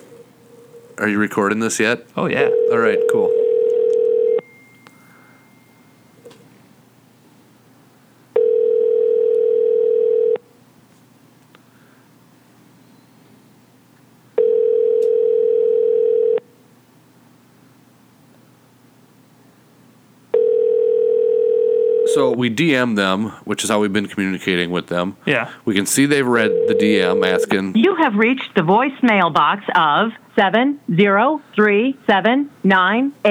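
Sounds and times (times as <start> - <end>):
speech: 1.0 - 3.4, 22.4 - 33.2
steady mid-pitched electronic telephone line tone while a call is placed: 2.2 - 6.4, 8.4 - 10.4, 14.4 - 16.5, 20.3 - 22.3, 26.2 - 28.6.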